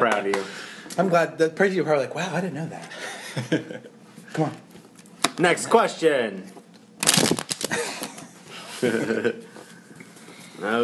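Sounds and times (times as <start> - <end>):
speech: 0.0 - 4.7, 5.4 - 6.6, 8.8 - 9.4, 10.6 - 10.8
laughter: 2.9 - 3.9, 7.7 - 9.6
index cards shuffling: 7.0 - 7.8.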